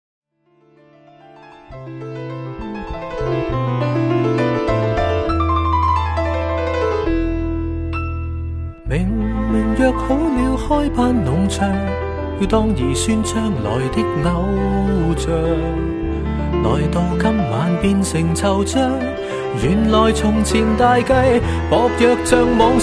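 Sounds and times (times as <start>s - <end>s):
piano piece: 0.3s - 22.8s.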